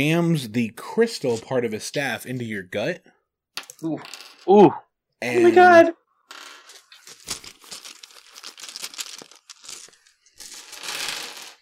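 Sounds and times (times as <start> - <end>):
speech: 0.0 - 3.1, 3.8 - 6.4
dice being gathered up by hand: 6.3 - 11.5.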